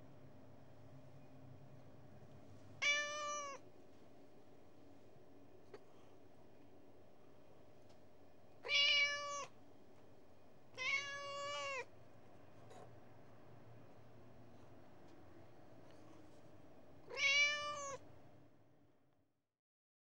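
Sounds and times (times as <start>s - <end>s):
Persian cat meowing: 2.8s - 3.6s, 8.6s - 9.6s, 10.8s - 11.9s, 17.1s - 18.0s.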